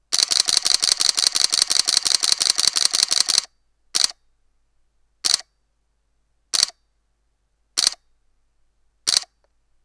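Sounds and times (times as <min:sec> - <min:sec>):
Canon EOS-40D camera shutter in continuous H RAW shooting: 0:00.1 - 0:04.2, 0:05.2 - 0:05.5, 0:06.5 - 0:06.8, 0:07.8 - 0:08.0, 0:09.1 - 0:09.4.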